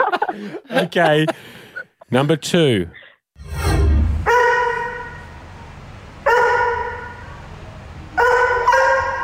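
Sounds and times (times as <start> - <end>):
laughter: 0.0 - 2.1
speech: 0.4 - 3.6
dog barking with drawn-out tonal barks and breaking voice: 4.3 - 5.2, 6.3 - 7.2, 8.2 - 9.2.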